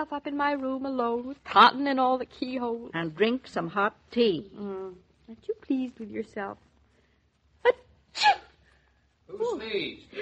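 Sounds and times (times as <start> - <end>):
speech: 0.0 - 6.7, 7.6 - 8.4, 9.3 - 10.1
two people sneezing: 8.1 - 8.6.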